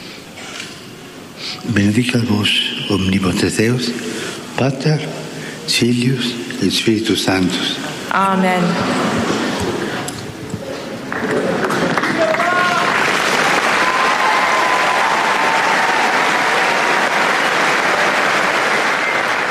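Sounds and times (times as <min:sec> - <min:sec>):
speech: 0:01.4 - 0:09.4
large crowd applauding after a blessing: 0:11.0 - 0:19.4.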